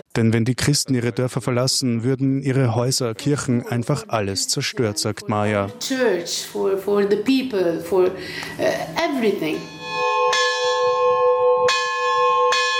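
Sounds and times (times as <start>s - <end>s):
speech: 0.2s - 10.0s
monastery church bells ringing: 9.5s - 12.7s.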